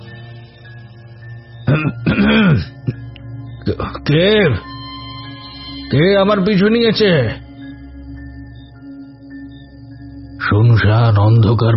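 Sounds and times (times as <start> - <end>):
person clearing throat: 1.7 - 3.1
speech: 1.8 - 2.0, 3.7 - 4.7, 5.9 - 7.4, 10.5 - 11.7.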